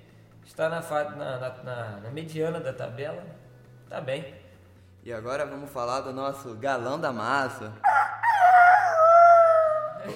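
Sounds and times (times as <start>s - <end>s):
speech: 0.5s - 4.4s, 5.0s - 8.0s
rooster crowing: 7.8s - 10.0s.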